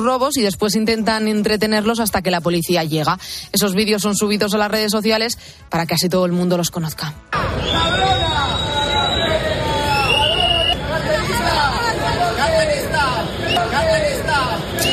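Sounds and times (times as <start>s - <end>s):
speech: 0.0s - 8.7s
shrill whistle blasts: 7.4s - 10.9s, 14.7s - 14.9s
crowd shouting while chasing pickpockets through a city square: 7.4s - 14.9s.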